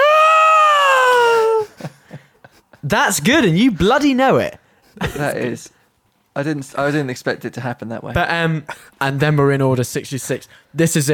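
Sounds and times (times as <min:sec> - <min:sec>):
person vocally imitating a falling creature's scream: 0:00.0 - 0:01.8
speech: 0:02.9 - 0:05.8, 0:06.4 - 0:11.1.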